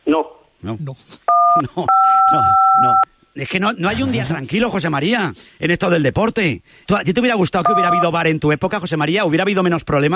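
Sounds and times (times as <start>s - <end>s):
speech: 0.1s - 10.1s
dual-pitched electronic beeping tone on a phone line: 1.3s - 3.1s, 7.6s - 8.2s.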